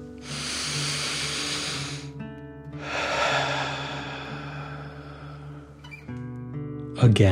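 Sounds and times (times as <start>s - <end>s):
slow breathing in and out during a calming breathing exercise: 0.0s - 6.1s.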